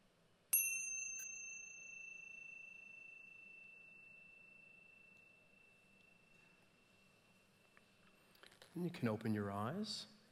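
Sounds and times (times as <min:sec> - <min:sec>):
meditation chime ringing: 0:00.6 - 0:08.2
speech: 0:08.8 - 0:10.2.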